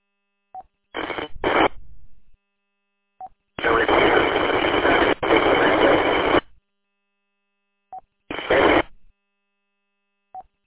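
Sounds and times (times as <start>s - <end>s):
harsh distorted ham radio transmission: 1.0s - 1.7s, 3.6s - 6.4s, 8.3s - 8.9s.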